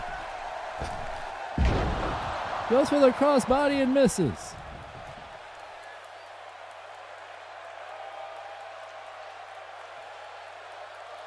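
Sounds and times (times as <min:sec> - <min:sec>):
wrestler slammed onto the ring mat with a fall-away slam: 0:00.8 - 0:02.3
speech: 0:02.7 - 0:04.4.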